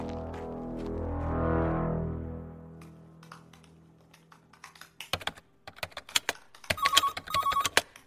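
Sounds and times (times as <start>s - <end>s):
low hum: 0.0s - 5.1s
keyboard typing: 4.1s - 8.0s
mobile phone ringing with an incoming call: 6.7s - 7.8s.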